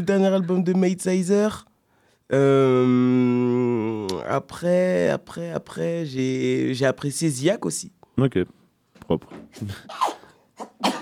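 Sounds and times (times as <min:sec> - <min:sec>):
speech: 0:00.0 - 0:01.7, 0:02.3 - 0:10.2
sneezing: 0:09.5 - 0:10.9.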